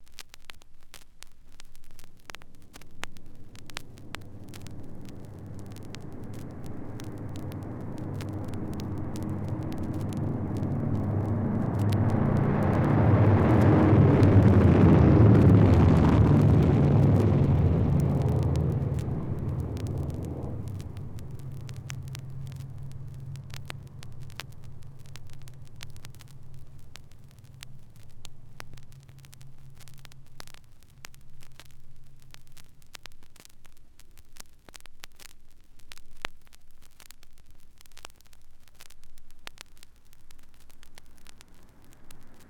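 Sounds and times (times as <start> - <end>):
DC7 airplane taking off: 3.4 - 26.6.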